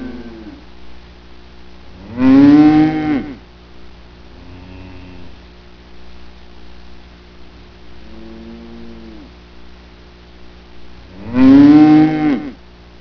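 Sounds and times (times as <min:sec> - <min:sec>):
cow mooing: 0:00.0 - 0:00.6, 0:02.0 - 0:03.4, 0:04.4 - 0:05.4, 0:08.0 - 0:09.3, 0:11.1 - 0:12.6
steady low background hum: 0:00.0 - 0:12.9.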